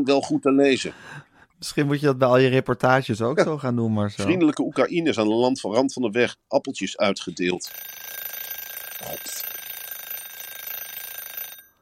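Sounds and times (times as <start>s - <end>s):
speech: 0.0s - 8.3s, 9.0s - 9.6s
alarm clock ringing with a rattling metallic buzz: 7.6s - 11.8s.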